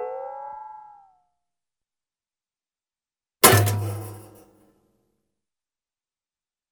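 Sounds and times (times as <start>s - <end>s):
light ringing metallic cartoon stretch and impact: 3.4s - 4.5s.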